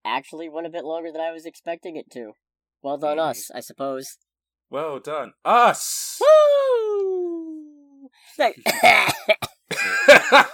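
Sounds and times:
speech: 0.1s - 7.3s, 8.2s - 10.5s
loud coughing fit: 8.6s - 10.5s.

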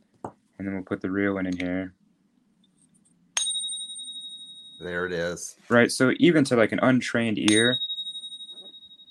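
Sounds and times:
faint low hum: 0.0s - 9.0s
speech: 0.6s - 2.0s, 4.8s - 7.9s
silver coin tapped in a ping test ringing: 3.4s - 5.3s, 7.4s - 9.0s.

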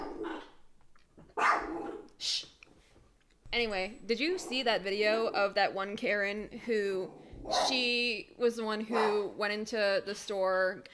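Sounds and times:
dog barking: 0.0s - 0.5s, 1.4s - 2.1s, 7.4s - 7.8s, 8.9s - 9.2s
speech: 2.2s - 2.5s, 3.5s - 10.9s.

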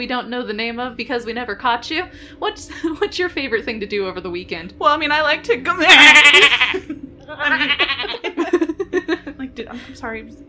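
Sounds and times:
speech: 0.0s - 8.2s, 9.0s - 10.4s
man imitating a goat bleating: 5.9s - 6.8s, 7.5s - 8.2s
man chuckling: 6.3s - 9.3s.

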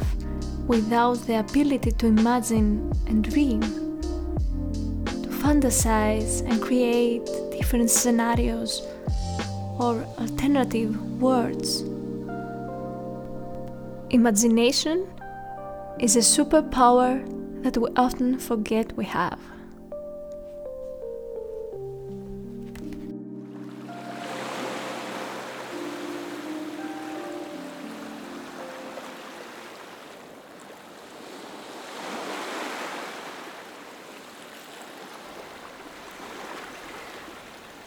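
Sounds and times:
ocean surf rolling in hissing swells: 0.0s - 2.6s, 6.5s - 37.8s
soft musical tone: 0.0s - 30.0s
breezy noise: 0.0s - 30.4s
speech: 0.7s - 3.8s, 5.4s - 8.9s, 9.8s - 11.9s, 14.1s - 15.2s, 16.0s - 19.5s.

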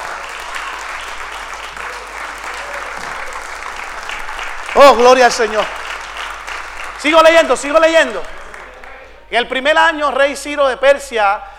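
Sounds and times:
audience applauding: 0.0s - 9.2s
speech: 4.8s - 5.8s, 7.0s - 8.4s, 9.3s - 11.5s.

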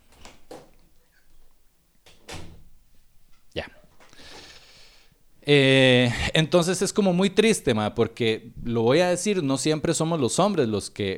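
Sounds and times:
cat pawing and scratching at a door: 0.0s - 4.2s
speech: 5.5s - 11.1s.

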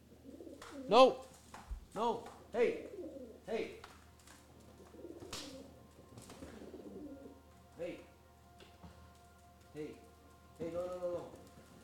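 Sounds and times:
pigeons or doves fighting and cooing: 0.0s - 1.0s, 2.3s - 7.8s
low hum: 0.0s - 11.8s
pigeon or dove wings flapping with rustling: 0.4s - 7.7s, 8.6s - 11.8s
speech: 0.9s - 1.3s, 2.0s - 3.9s.

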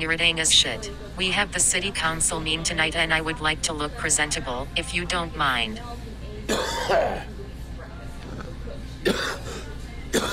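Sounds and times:
speech: 0.0s - 7.3s
phlegmy wet cough: 6.5s - 7.3s, 9.0s - 10.3s.

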